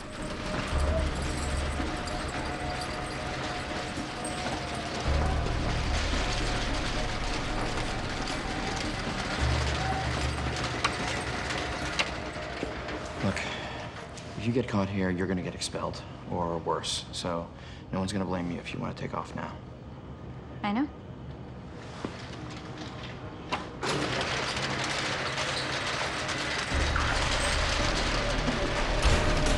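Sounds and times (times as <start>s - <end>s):
metal rolling shutter door at a loading dock rattling open: 0.0s - 15.6s, 22.2s - 29.5s
speech: 14.5s - 19.6s, 20.6s - 21.0s.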